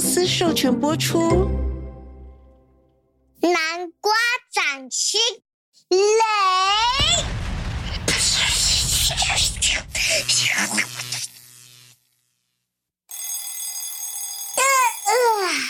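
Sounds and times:
speech: 0.2s - 1.6s, 3.4s - 7.4s, 8.6s - 11.1s, 15.1s - 15.6s
alarm clock ringing with electronic buzzing tone: 13.1s - 15.6s.

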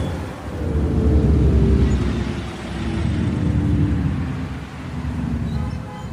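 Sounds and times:
tour bus deep steady engine drone: 0.0s - 6.1s
tour bus road noise: 0.0s - 6.1s.

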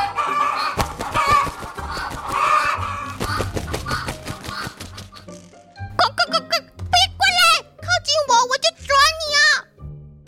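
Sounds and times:
several agitated caged chickens squawking and clucking: 0.0s - 5.4s
people talking lively: 6.0s - 9.6s.

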